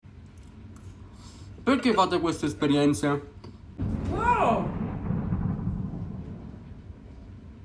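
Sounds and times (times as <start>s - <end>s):
speech: 1.6s - 3.4s
deep thunder rumbling in a thunderstorm: 3.8s - 7.6s.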